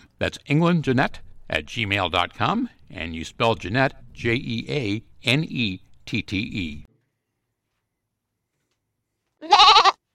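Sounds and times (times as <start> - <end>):
speech: 0.2 - 6.9
goat bleating: 9.4 - 10.0.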